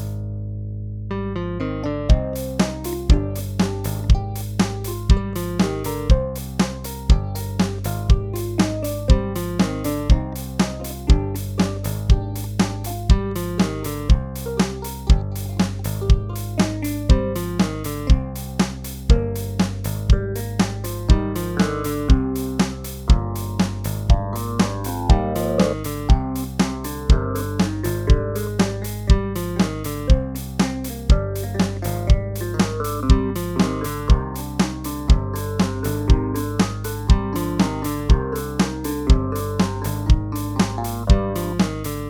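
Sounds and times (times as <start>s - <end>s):
clavinet melody: 1.6s - 18.6s, 20.2s - 42.0s.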